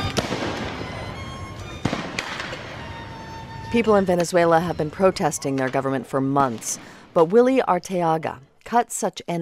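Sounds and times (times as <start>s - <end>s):
tear gas canisters exploding during a street protest in Caracas Venezuela: 0.1s - 0.8s, 1.8s - 2.8s
speech: 3.7s - 9.4s.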